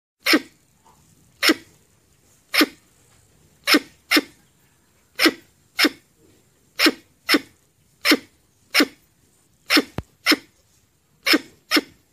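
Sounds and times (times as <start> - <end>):
red squirrel calling with rasping sneeze-like chuffs: 0.2 - 0.7, 1.3 - 1.7, 2.5 - 2.8, 3.6 - 4.4, 5.1 - 6.1, 6.7 - 10.6, 11.2 - 12.1.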